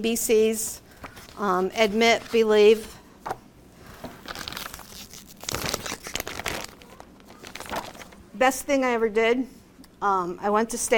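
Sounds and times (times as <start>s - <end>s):
speech: 0.0s - 0.8s, 1.4s - 3.0s, 8.4s - 10.9s
heavy 38-pound copier paper crinkling and rustling: 0.9s - 2.8s, 3.8s - 8.2s.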